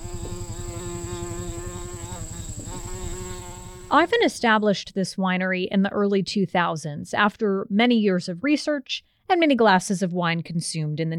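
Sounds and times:
bees buzzing: 0:00.0 - 0:04.4
speech: 0:03.9 - 0:11.1.

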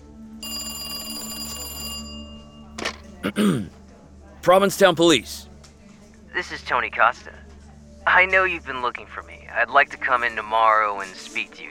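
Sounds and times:
telephone ringing with a bright electronic trill: 0:00.4 - 0:03.2
voice: 0:03.2 - 0:03.7, 0:04.4 - 0:05.4
speech: 0:03.2 - 0:03.8, 0:04.4 - 0:05.5, 0:06.4 - 0:07.5, 0:08.1 - 0:11.7.

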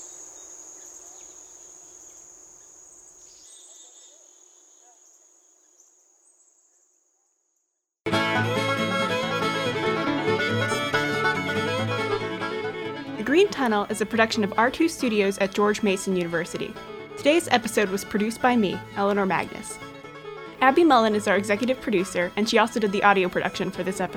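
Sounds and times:
crickets chirping on a mountain bald: 0:00.0 - 0:07.2
music: 0:08.1 - 0:24.1
speech: 0:13.4 - 0:19.8, 0:20.6 - 0:24.1.

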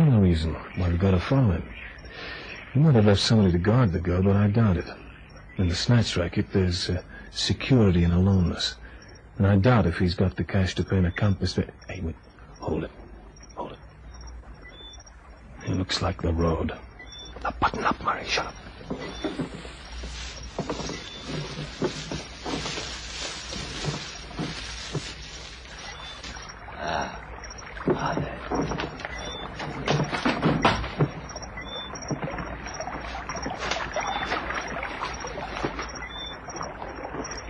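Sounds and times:
speech: 0:00.4 - 0:05.0, 0:05.6 - 0:08.8, 0:09.4 - 0:13.0, 0:15.6 - 0:22.0
rowboat oars splashing in water: 0:14.0 - 0:37.4.

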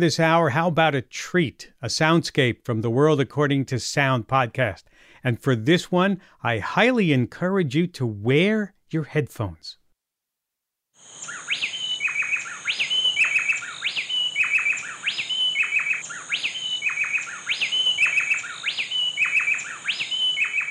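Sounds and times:
speech: 0:00.0 - 0:09.8
female and male bay wrens chirping in an antiphonal duet: 0:11.0 - 0:20.7.

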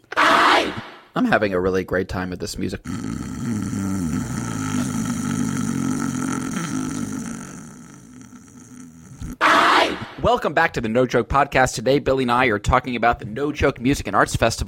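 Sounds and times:
speech: 0:01.2 - 0:03.5, 0:10.2 - 0:14.6
man imitating loud snoring: 0:02.8 - 0:09.5.

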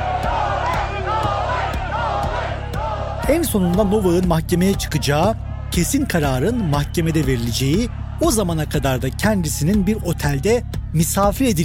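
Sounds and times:
thousands of fans chanting in unison outside an airport: 0:00.0 - 0:03.3
rhythmic clapping or stamping to the beat: 0:00.0 - 0:05.5
speech: 0:03.3 - 0:11.6.

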